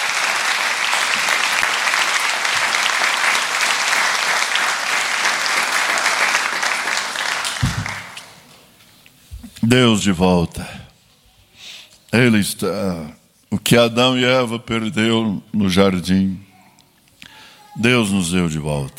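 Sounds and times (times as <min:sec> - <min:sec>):
church audience applauding: 0:00.0 - 0:08.5
speech: 0:09.7 - 0:10.7, 0:12.2 - 0:16.4, 0:17.8 - 0:18.9.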